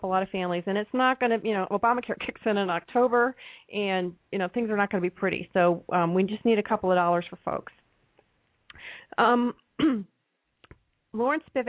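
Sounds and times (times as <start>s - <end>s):
speech: 0.0s - 7.8s, 8.8s - 10.1s, 11.1s - 11.6s
person clearing throat after swallowing wrong: 9.8s - 10.2s.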